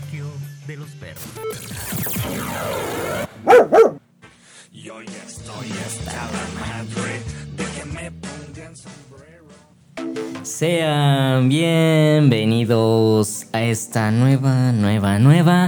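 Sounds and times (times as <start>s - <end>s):
speech: 0.7s - 3.2s, 10.6s - 15.6s
dog barking: 3.5s - 4.0s.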